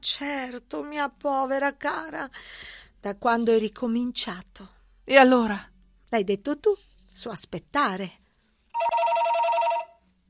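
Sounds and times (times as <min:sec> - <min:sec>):
speech: 0:00.0 - 0:08.2
telephone ringing: 0:08.8 - 0:10.0.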